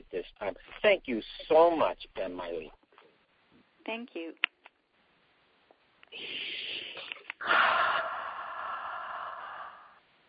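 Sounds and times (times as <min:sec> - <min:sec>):
speech: 0:00.2 - 0:02.8, 0:03.9 - 0:04.5, 0:06.1 - 0:08.1
person breathing deeply: 0:06.1 - 0:10.0.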